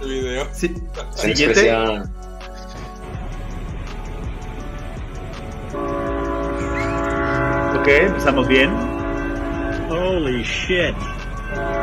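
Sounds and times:
speech: 0.4s - 2.2s, 7.9s - 8.8s, 9.9s - 11.8s
train rumbling past: 3.2s - 11.8s
train horn sounding in sustained harmonic blasts: 5.7s - 11.8s.

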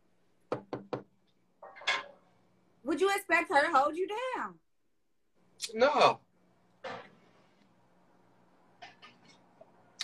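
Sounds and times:
crisp knocking on wood: 0.5s - 1.1s
speech: 2.9s - 4.6s, 5.6s - 6.2s.

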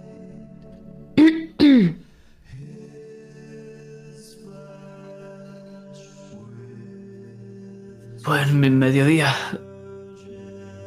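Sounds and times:
person clearing throat while sitting on a bench: 1.2s - 2.1s
speech: 8.3s - 9.7s.

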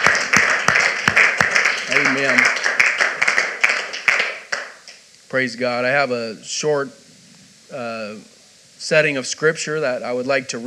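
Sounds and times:
audience clapping hands in praise of God: 0.0s - 5.0s
speech: 2.2s - 2.6s, 5.3s - 7.0s, 7.7s - 10.6s.

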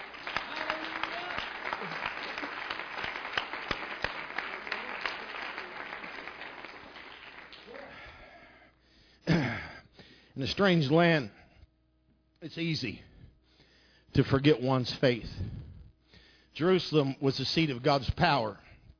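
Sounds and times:
audience applause: 0.0s - 8.3s
speech: 10.4s - 11.4s, 12.4s - 13.1s, 14.2s - 15.6s, 16.6s - 18.6s.

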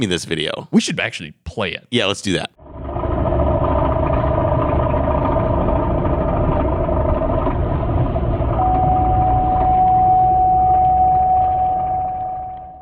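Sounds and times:
speech: 0.0s - 2.6s
steady whine: 2.6s - 12.7s
car engine rattling and grinding while driving: 2.8s - 12.1s.

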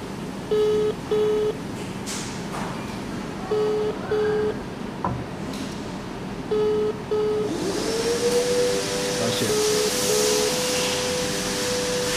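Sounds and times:
steady hum: 0.0s - 12.1s
speech: 0.5s - 1.3s
phone call ringing tone: 0.5s - 1.6s, 3.5s - 4.6s, 6.5s - 7.5s.

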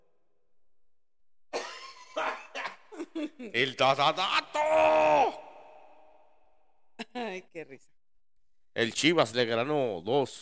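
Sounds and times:
person coughing harshly: 1.5s - 3.1s
speech: 3.1s - 5.4s, 7.6s - 8.0s, 8.8s - 10.4s.

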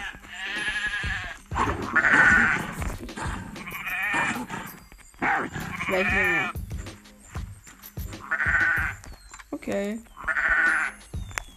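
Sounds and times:
sheep bleating: 0.0s - 6.6s, 8.2s - 9.0s, 10.2s - 11.0s
speech: 5.9s - 6.6s, 9.7s - 10.1s.

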